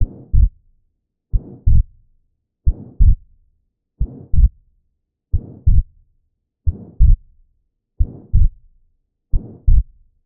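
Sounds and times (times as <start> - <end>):
heart murmur from pulmonary stenosis: 1.4 - 1.9, 2.7 - 3.2, 4.0 - 4.5, 5.4 - 5.8, 6.7 - 7.2, 8.0 - 8.6, 9.4 - 9.9.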